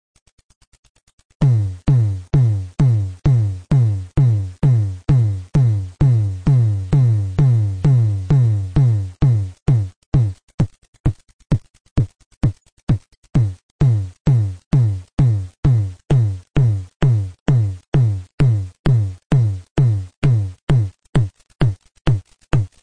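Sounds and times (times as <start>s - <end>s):
synthesized tom drum: 1.4s - 22.8s.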